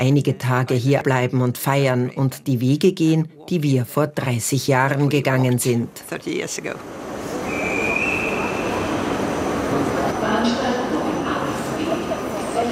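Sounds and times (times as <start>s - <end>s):
speech: 0.0s - 7.3s
rail noise rumble at a train station: 6.2s - 12.6s
train wheels squealing: 7.2s - 11.3s.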